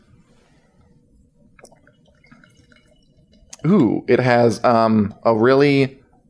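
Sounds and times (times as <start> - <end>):
liquid pouring into a glass: 1.5 - 5.4
speech: 3.6 - 6.0.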